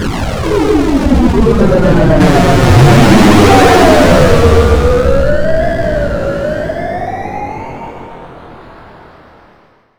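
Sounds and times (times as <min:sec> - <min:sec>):
long retro high-tech sound: 0:00.8 - 0:07.1.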